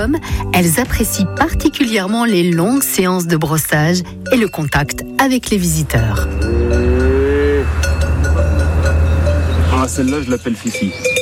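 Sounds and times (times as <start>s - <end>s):
speech: 0.0s - 6.8s, 9.9s - 11.2s
low rumble: 5.3s - 10.0s
Hérens cow mooing: 5.9s - 9.6s.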